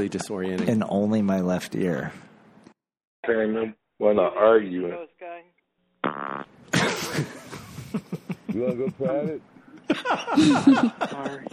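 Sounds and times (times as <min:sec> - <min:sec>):
speech: 0:00.0 - 0:02.3, 0:03.2 - 0:05.2, 0:07.2 - 0:11.5
fart: 0:06.0 - 0:06.8
laughter: 0:06.8 - 0:11.5.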